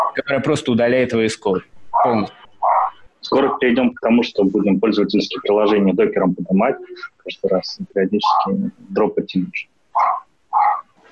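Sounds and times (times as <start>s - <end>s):
speech: 0.2s - 2.4s, 3.2s - 10.1s
dog barking: 1.9s - 3.0s, 10.0s - 10.9s.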